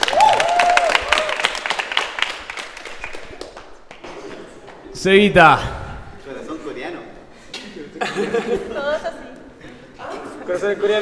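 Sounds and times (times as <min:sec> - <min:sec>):
cheering whoop: 0:00.0 - 0:01.6
small group clapping for a birthday: 0:00.0 - 0:04.9
speech: 0:05.0 - 0:05.8, 0:08.0 - 0:09.2, 0:10.5 - 0:11.0
laughter: 0:07.5 - 0:11.0.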